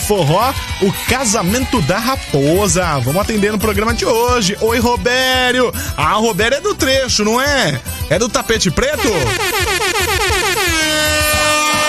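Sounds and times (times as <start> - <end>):
speech: 0.1 - 10.4
truck air horn blaring: 8.9 - 11.8.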